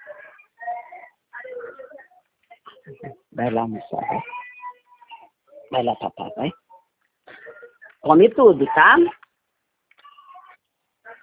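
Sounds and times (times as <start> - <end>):
baby crying: 0.0 - 1.9, 3.9 - 5.7
baby whimpering: 0.0 - 2.1, 2.9 - 7.8
speech: 2.9 - 4.4, 5.7 - 6.6, 8.0 - 9.2.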